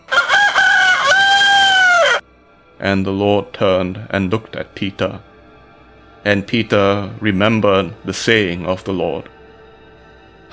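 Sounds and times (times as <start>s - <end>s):
rooster crowing: 0.0s - 2.2s
speech: 2.8s - 5.3s, 6.2s - 9.4s.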